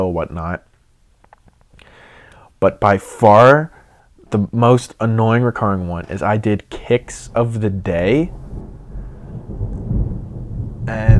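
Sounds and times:
speech: 0.0s - 0.7s, 2.6s - 8.4s, 10.9s - 11.1s
deep rumbling thunder boom: 7.0s - 11.1s.

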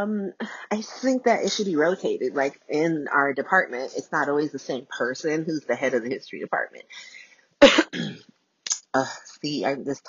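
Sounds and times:
speech: 0.0s - 8.2s, 8.9s - 10.0s
person coughing: 7.6s - 8.3s.

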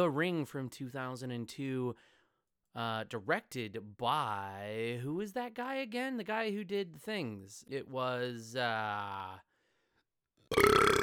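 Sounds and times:
speech: 0.0s - 2.2s, 2.8s - 9.5s
person burping: 10.5s - 11.0s.

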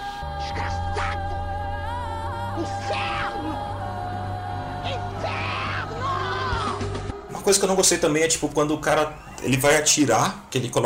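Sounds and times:
loud dense movie soundtrack: 0.0s - 10.8s
speech: 2.6s - 3.7s, 7.5s - 10.8s
woman shrieking and yelling: 2.6s - 3.8s, 4.8s - 7.0s.

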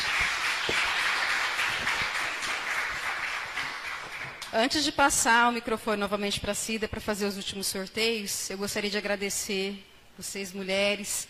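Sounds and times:
audience applause: 0.0s - 4.4s
speech: 4.5s - 11.2s.

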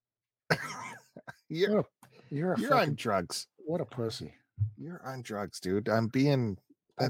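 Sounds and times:
raspy cough: 0.5s - 1.1s
speech: 1.5s - 7.0s.

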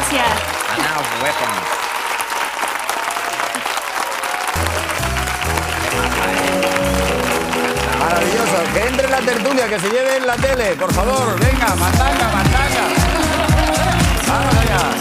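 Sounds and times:
audience applause: 0.0s - 15.0s
booming music: 4.6s - 15.0s
speech: 9.2s - 13.0s, 14.3s - 15.0s.

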